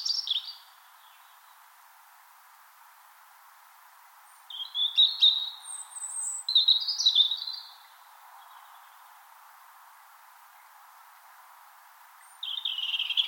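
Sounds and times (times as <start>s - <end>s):
European robin spring morning song in Finland: 0.0s - 1.7s, 4.2s - 9.2s, 12.1s - 13.2s.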